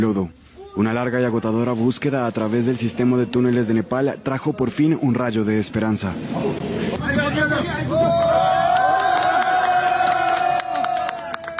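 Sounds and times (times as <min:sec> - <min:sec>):
speech: 0:00.0 - 0:08.5
excited crowd babble: 0:00.4 - 0:08.6
rescue teams cheering and shouting with joy: 0:06.4 - 0:11.5.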